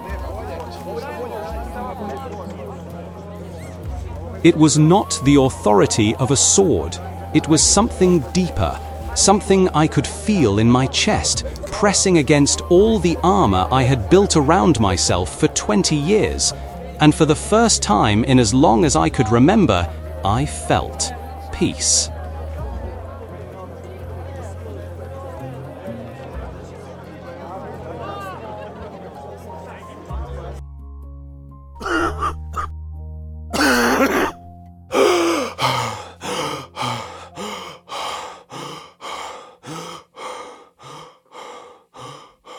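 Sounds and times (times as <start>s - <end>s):
speech: 4.4s - 22.1s
man coughing and gasping for air: 31.8s - 32.7s, 33.6s - 37.8s.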